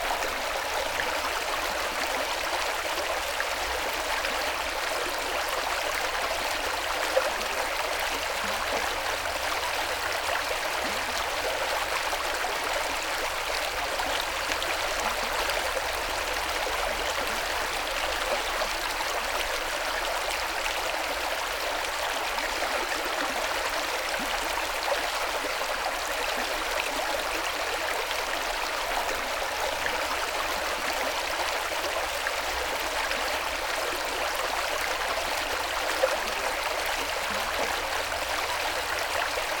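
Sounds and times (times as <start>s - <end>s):
brook: 0.0s - 39.5s.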